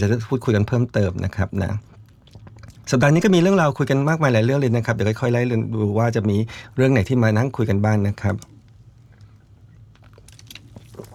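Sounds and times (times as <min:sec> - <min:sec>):
speech: 0:00.0 - 0:01.9, 0:02.9 - 0:08.5
steady low hum: 0:00.0 - 0:11.1
man sipping water: 0:08.5 - 0:11.1.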